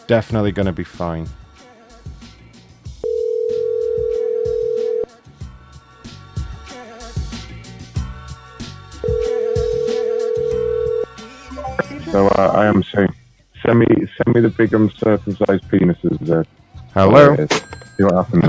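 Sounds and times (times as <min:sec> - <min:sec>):
speech: 0:00.1 - 0:01.4, 0:12.2 - 0:18.4
ringback tone of a call to a cell phone: 0:03.0 - 0:05.1, 0:09.0 - 0:12.5.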